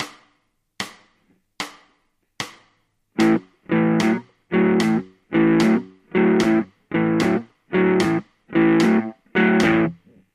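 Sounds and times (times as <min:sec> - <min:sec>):
blues music: 0:03.2 - 0:10.2.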